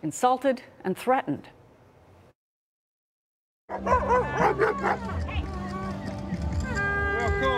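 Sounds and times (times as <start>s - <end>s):
speech: 0.0s - 1.6s, 3.7s - 5.4s, 7.3s - 7.5s
person barking like a dog at a street protest rally: 3.7s - 5.2s
noisy crowd murmuring and talking at a street protest rally: 3.8s - 7.5s.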